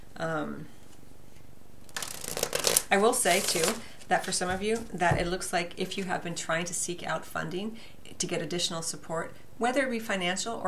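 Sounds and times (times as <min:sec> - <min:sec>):
speech: 0:00.2 - 0:00.8, 0:02.9 - 0:10.6
cards being drawn and shuffled during a card reading: 0:01.9 - 0:05.0.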